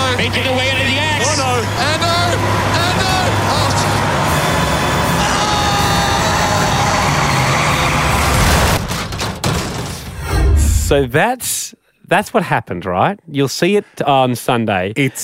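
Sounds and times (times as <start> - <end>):
bus engines roaring in figure-eight race: 0.0 - 9.0, 10.3 - 11.1
buses colliding in figure-eight race: 0.0 - 11.2
speech: 0.2 - 0.8, 10.9 - 15.2.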